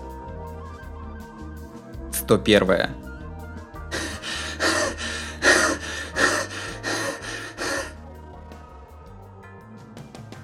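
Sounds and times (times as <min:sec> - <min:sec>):
speech: 0:02.3 - 0:03.0
heavy labored breathing: 0:03.9 - 0:08.1.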